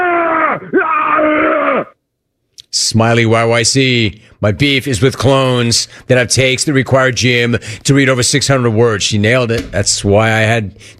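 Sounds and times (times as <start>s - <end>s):
man imitating grunting: 0.0s - 1.9s
speech: 2.9s - 10.9s.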